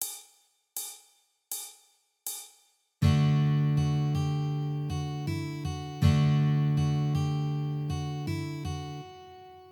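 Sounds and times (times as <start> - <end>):
strummed chords: 3.0 - 9.6.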